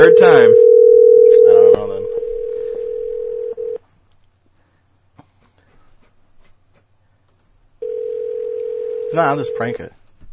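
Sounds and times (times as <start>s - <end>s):
speech: 0.0s - 0.6s, 9.1s - 10.0s
phone ringback tone buzzing: 0.0s - 3.8s, 7.8s - 9.6s
faint noise: 0.0s - 10.3s.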